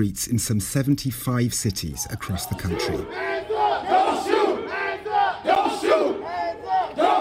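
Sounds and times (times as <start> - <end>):
speech: 0.0 - 4.0
crowd of demonstrators chanting at street protests in Minneapolis: 2.0 - 7.1.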